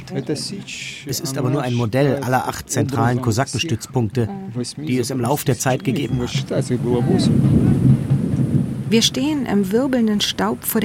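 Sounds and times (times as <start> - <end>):
speech: 0.1 - 7.9, 8.9 - 10.8
thunder of an approaching thunderstorm: 6.2 - 9.8.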